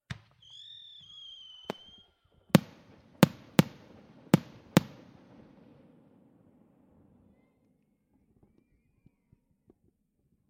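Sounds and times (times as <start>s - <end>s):
firework starting signal: 0.4s - 6.0s.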